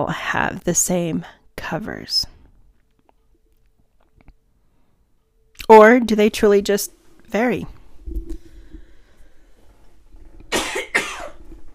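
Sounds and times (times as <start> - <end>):
speech: 0.0 - 2.3, 5.7 - 8.4
person with allergies coughing: 10.5 - 11.4.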